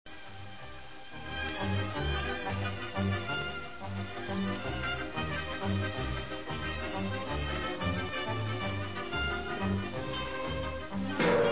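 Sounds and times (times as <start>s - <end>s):
rumba music: 1.3s - 11.5s.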